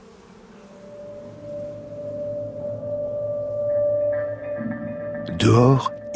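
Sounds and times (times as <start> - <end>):
honeybee colony clustered for winter inside its hive droning hum: 0.0 - 4.6
higher buzzing of honeybees: 0.0 - 5.2
speech: 5.4 - 6.1.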